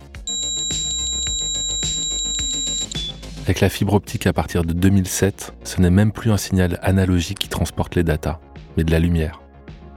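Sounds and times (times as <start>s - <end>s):
pitched-down ADSL2 modem handshake with whistling tones, chirps and thumps: 0.3s - 3.2s
speech: 3.5s - 9.4s.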